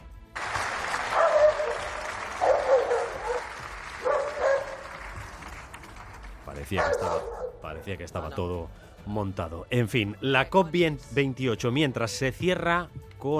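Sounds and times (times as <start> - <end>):
dog barking: 1.1 - 4.9, 6.8 - 7.6
speech: 6.7 - 13.3.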